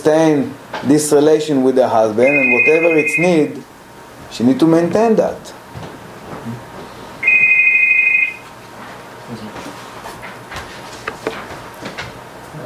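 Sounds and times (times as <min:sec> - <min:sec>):
speech: 0:00.0 - 0:03.7, 0:04.3 - 0:05.6
phone ringing: 0:02.2 - 0:03.6, 0:07.2 - 0:08.5.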